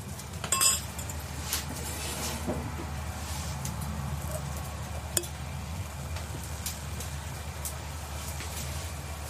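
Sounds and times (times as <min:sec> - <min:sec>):
low steady outdoor hum: 0:00.0 - 0:09.2
wine glasses clinking in a toast at a rented farm cottage: 0:00.5 - 0:01.1.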